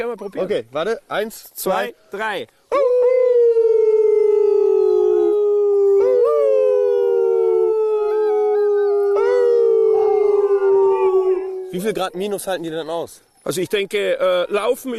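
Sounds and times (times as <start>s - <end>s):
speech: 0.0s - 2.8s, 11.7s - 14.9s
chorus of sled dogs howling: 2.7s - 12.8s.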